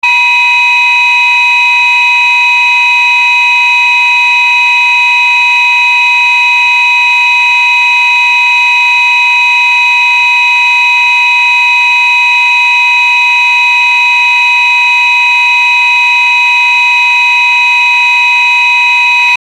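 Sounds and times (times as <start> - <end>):
safety alarm: 0.0 - 19.4.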